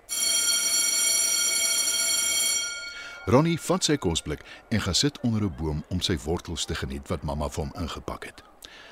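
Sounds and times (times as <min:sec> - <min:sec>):
school bell ringing: 0:00.0 - 0:04.3
speech: 0:03.3 - 0:08.9.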